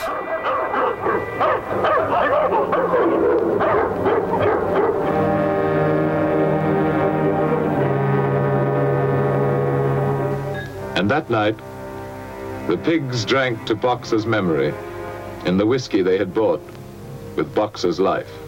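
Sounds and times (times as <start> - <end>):
two dogs barking at farm animals outside a house: 0.0 - 5.6
sustained steady tonal chord: 0.0 - 17.4
speech: 11.0 - 11.7, 12.7 - 16.8, 17.4 - 18.4.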